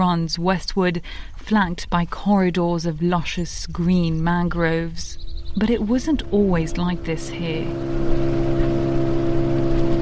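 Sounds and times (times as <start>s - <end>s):
speech: 0.1s - 8.4s
boat motor droning during a ride into the mangroves of the Casamance River: 3.7s - 9.9s.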